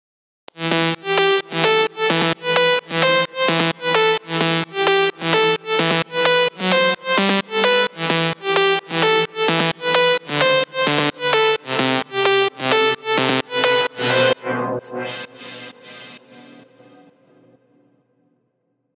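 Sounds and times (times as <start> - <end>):
filtered lead synth: 0.5 - 14.4.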